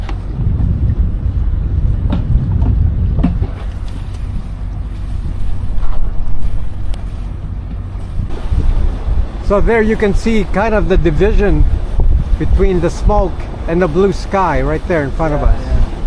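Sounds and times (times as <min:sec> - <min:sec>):
heavy low rumbling wind buffeting the microphone on a sailboat: 0:00.0 - 0:16.0
sailboat hull creaking: 0:00.0 - 0:16.0
water splashing against sailboat hull: 0:02.0 - 0:16.0
speech: 0:09.5 - 0:11.8, 0:12.4 - 0:15.8.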